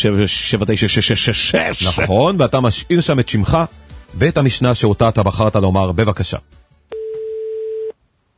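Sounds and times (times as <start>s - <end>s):
speech: 0.0s - 6.6s
telephone line tone during dialing: 6.9s - 7.9s.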